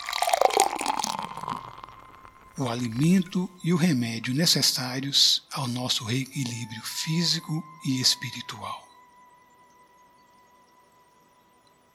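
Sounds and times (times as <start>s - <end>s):
water pouring into a glass in a steady stream: 0.0s - 3.6s
speech: 2.6s - 8.9s.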